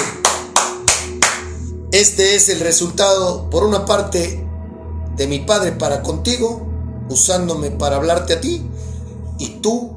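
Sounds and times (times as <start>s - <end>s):
one person clapping hands: 0.0s - 1.6s
speech: 2.0s - 4.4s, 5.2s - 8.8s, 9.4s - 9.9s.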